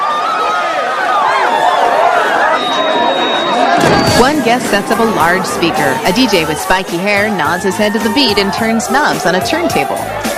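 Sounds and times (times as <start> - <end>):
dense crowd of people chattering and calling out: 0.0 - 10.3
speech: 4.2 - 10.3.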